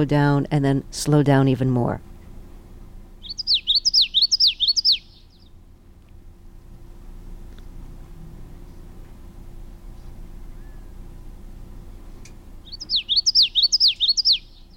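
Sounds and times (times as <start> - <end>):
speech: 0.0 - 2.1
faint background hum: 0.0 - 14.7
common yellowthroat song: 3.2 - 5.6, 12.6 - 14.7.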